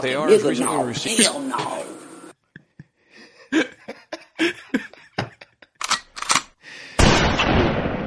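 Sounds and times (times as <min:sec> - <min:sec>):
speech: 0:00.0 - 0:01.9
laughter: 0:02.4 - 0:05.8
sharp cracks and clicks: 0:05.8 - 0:06.5
shotgun blast fired outside a house for home defense: 0:07.0 - 0:08.0.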